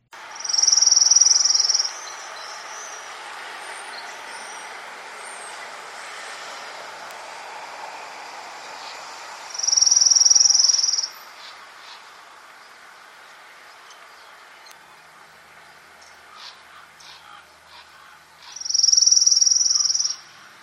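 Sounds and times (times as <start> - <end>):
faint outdoor hiss: 0.1 - 20.6
orange-crowned warbler steady-pitch trill: 0.3 - 5.7, 8.7 - 12.8, 16.0 - 20.3.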